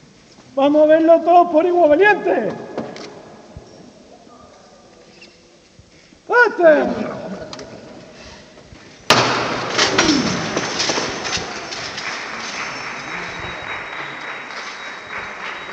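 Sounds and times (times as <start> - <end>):
speech: 0.6 - 2.7, 6.5 - 7.2
applause inside a church in Jaén during an Easter Sunday procession: 9.7 - 15.7.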